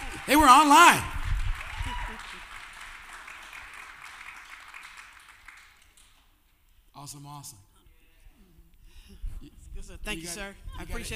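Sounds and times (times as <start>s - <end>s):
audience cheering: 0.0s - 5.7s
audience clapping: 0.0s - 6.5s
speech: 0.3s - 1.1s, 7.1s - 7.7s, 9.4s - 11.1s.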